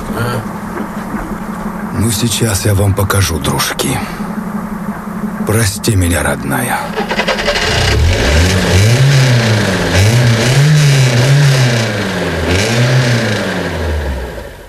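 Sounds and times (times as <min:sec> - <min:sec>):
speech: 0:02.0 - 0:04.4, 0:05.5 - 0:07.2
engine of a stuck car revving: 0:06.7 - 0:14.6.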